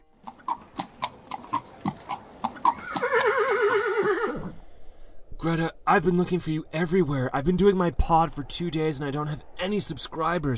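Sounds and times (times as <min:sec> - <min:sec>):
horse hooves clip-clopping: 0:00.0 - 0:04.2
horse whinnying: 0:00.3 - 0:04.6
speech: 0:05.4 - 0:10.5.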